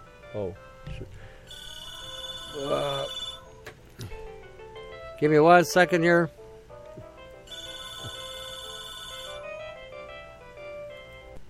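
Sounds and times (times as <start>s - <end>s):
speech: 0.3s - 1.6s, 2.5s - 3.2s, 5.2s - 6.4s
telephone ringing with a bright electronic tone: 1.5s - 3.6s, 7.4s - 9.7s.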